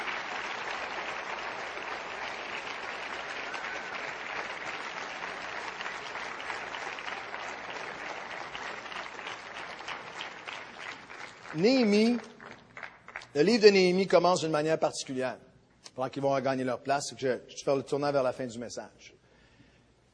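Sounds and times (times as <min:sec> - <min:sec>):
large audience applauding as a group returns to their seats: 0:00.0 - 0:13.3
speech: 0:11.6 - 0:12.3, 0:13.3 - 0:19.2.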